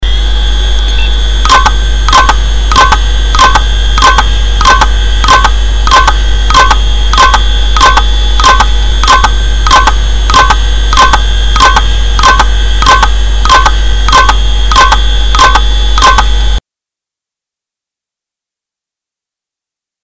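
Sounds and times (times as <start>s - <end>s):
hard drive clicking: 0.9s - 16.3s.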